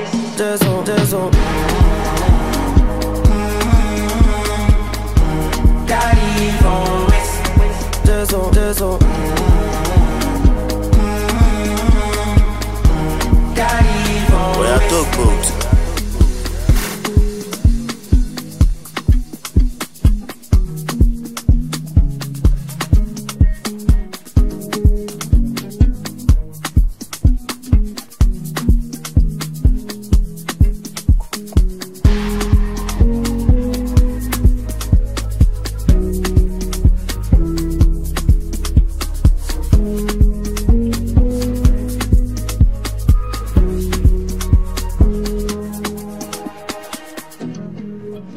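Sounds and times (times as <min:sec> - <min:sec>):
instrumental beat: 0:00.1 - 0:47.6.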